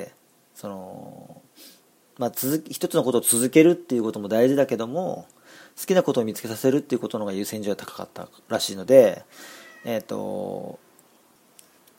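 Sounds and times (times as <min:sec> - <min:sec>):
speech: 0:00.0 - 0:10.8
cat meowing: 0:09.5 - 0:10.1.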